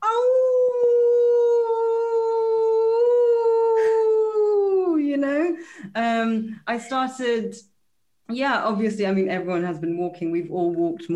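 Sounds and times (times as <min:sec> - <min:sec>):
person howling like a wolf as a morning practice: 0:00.0 - 0:04.9
speech: 0:06.0 - 0:07.7, 0:08.3 - 0:11.1.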